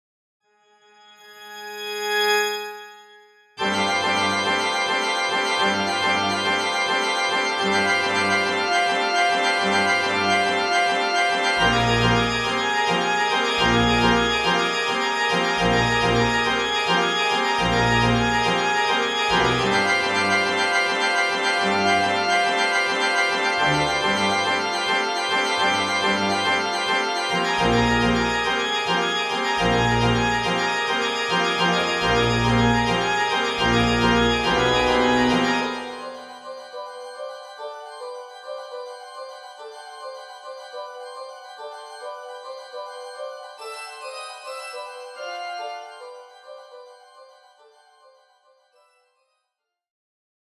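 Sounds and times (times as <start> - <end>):
organ postlude: 3.6 - 48.4.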